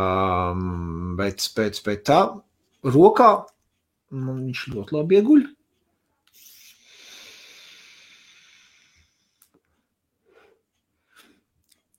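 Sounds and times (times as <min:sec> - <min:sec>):
speech: 0:00.0 - 0:03.5, 0:04.1 - 0:05.6
person inhaling and exhaling vapor from a 0.6-ohm vape pod: 0:06.3 - 0:09.5.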